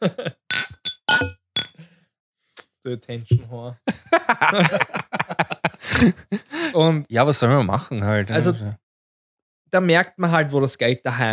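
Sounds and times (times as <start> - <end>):
laughter: 0.0 - 0.4, 3.9 - 6.8
glasses clinking in a toast: 0.5 - 1.8
speech: 2.8 - 5.0, 6.0 - 8.8, 9.7 - 11.3.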